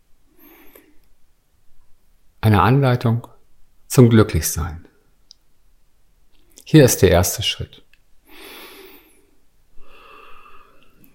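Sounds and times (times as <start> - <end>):
deep breath in and out with faint tonal hum: 0.3 - 1.0, 8.2 - 11.1
speech: 2.4 - 3.3, 3.9 - 4.9, 6.7 - 7.8.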